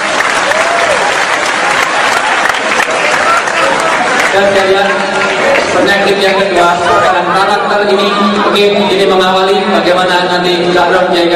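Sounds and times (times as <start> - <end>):
audience applause at a gathering: 0.0 - 7.1
speech: 4.4 - 5.0, 5.8 - 11.3.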